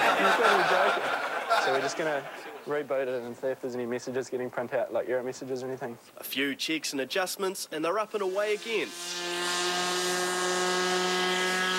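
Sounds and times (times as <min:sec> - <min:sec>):
laughter: 0:00.0 - 0:02.7
speech: 0:01.7 - 0:09.6
small unmanned plane propeller in flight: 0:08.6 - 0:11.7.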